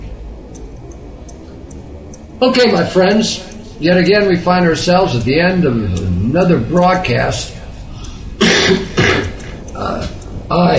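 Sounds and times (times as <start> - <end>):
speech: 2.4 - 7.6, 8.7 - 8.9, 10.5 - 10.7
harsh coughs from someone unwell: 8.4 - 9.4.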